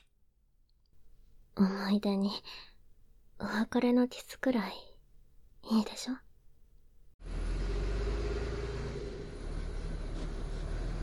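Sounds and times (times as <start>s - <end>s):
speech: 1.6s - 2.7s, 3.4s - 4.9s, 5.6s - 6.2s
bus engine rumbling as the bus pulls up: 7.2s - 11.0s.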